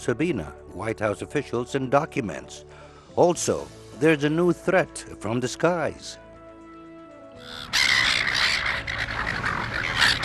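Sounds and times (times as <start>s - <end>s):
speech: 0.0s - 6.2s, 7.4s - 8.0s
flock of seagulls squawking and crying: 7.4s - 10.2s.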